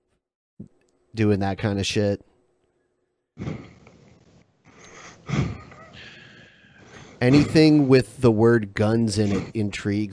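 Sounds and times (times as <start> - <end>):
speech: 1.2 - 2.3, 7.2 - 10.1
heavy breathing against a microphone: 3.4 - 7.8.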